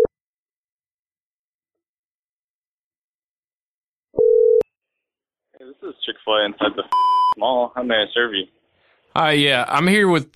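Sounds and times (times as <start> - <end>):
telephone ringing tone: 4.2 - 4.6
speech: 5.6 - 8.6, 9.2 - 10.3.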